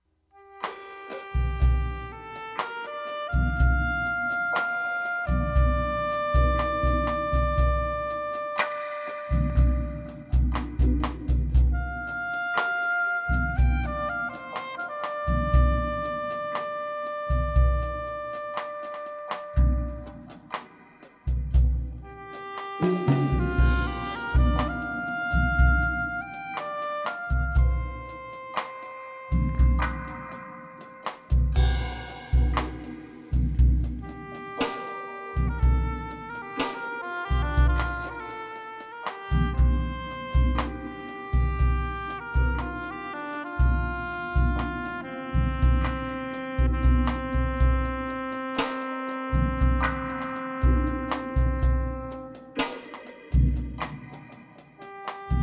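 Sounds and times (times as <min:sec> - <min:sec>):
drums: 0:00.0 - 0:55.4
oboe solo: 0:00.4 - 0:10.4, 0:11.5 - 0:20.2, 0:22.0 - 0:32.6, 0:34.0 - 0:52.8, 0:54.8 - 0:55.4.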